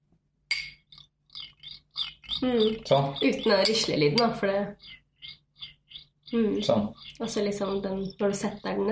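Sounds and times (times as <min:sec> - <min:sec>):
sharp metallic clink on a drinking glass: 0:00.5 - 0:00.8
speech: 0:02.4 - 0:05.0, 0:06.3 - 0:08.9.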